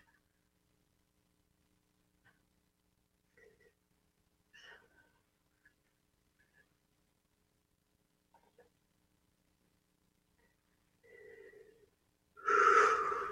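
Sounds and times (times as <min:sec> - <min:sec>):
deep breathing: 0:11.0 - 0:13.3.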